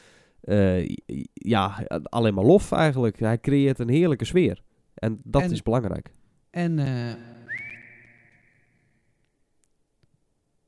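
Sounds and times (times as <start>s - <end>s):
speech: 0.4s - 7.4s
short clear whistle sliding upward: 7.3s - 9.2s.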